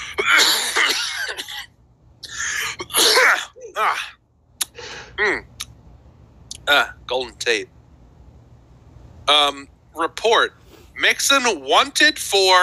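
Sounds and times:
person clearing throat with harsh raspy hacks and coughs: 0.0s - 4.1s, 5.2s - 5.5s
person grunting: 2.3s - 4.2s, 5.0s - 5.5s
speech: 6.7s - 7.8s, 9.3s - 12.6s.

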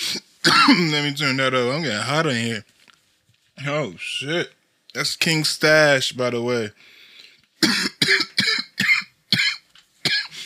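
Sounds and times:
harsh coughing: 0.0s - 1.1s, 7.6s - 10.4s
speech: 0.1s - 2.8s, 3.6s - 7.0s, 7.6s - 7.9s.

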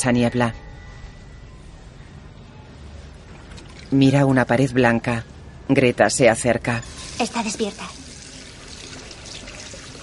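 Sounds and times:
speech: 0.0s - 0.7s, 3.9s - 8.0s
hands being washed under running water in a hospital: 6.8s - 10.0s.

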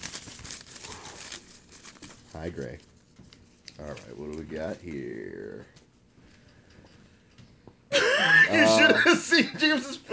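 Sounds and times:
paper crinkling: 0.0s - 5.0s
speech: 2.4s - 2.9s, 3.8s - 5.8s, 8.5s - 10.1s
laughter: 7.9s - 10.1s.

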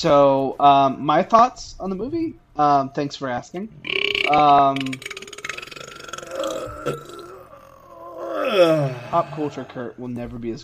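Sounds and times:
speech: 0.0s - 5.1s, 6.8s - 7.1s, 8.5s - 10.6s
person burping with a deep buzzy tone: 3.8s - 9.9s.

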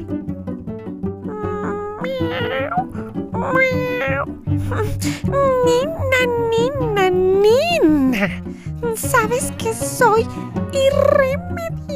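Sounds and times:
cat meowing: 1.3s - 4.8s
speech: 3.4s - 11.8s.

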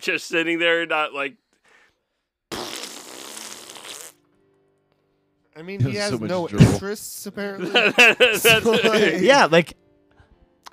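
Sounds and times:
speech: 0.0s - 1.4s, 5.6s - 9.8s
long raspy fart: 2.5s - 4.3s
laughter: 7.5s - 9.5s.

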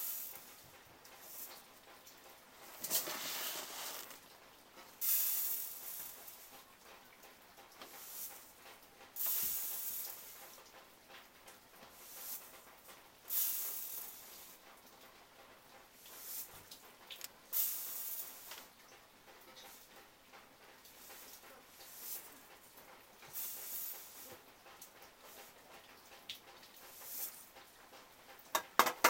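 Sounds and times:
faint airy hiss: 0.0s - 6.8s, 7.7s - 10.7s, 11.9s - 14.8s, 16.0s - 25.6s, 26.7s - 27.6s
melting snow dripping from a roof onto the eaves: 0.0s - 29.0s.

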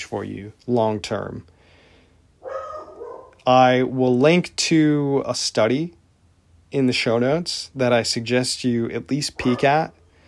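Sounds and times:
speech: 0.0s - 1.6s, 3.4s - 6.0s, 6.7s - 10.0s
dog barking: 2.4s - 3.4s, 9.4s - 9.9s.

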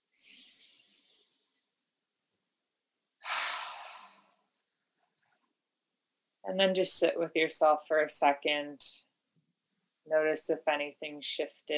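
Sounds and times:
deep breathing during a guided breathwork exercise: 0.1s - 1.7s, 3.2s - 4.5s
speech: 6.5s - 9.1s, 10.1s - 11.7s.

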